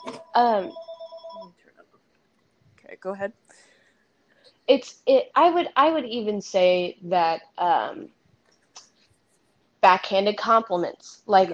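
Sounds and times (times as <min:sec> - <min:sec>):
house phone ringing with an electronic trill: 0:00.0 - 0:01.6
speech: 0:00.4 - 0:00.8, 0:02.9 - 0:03.7, 0:04.7 - 0:08.2, 0:09.8 - 0:11.5.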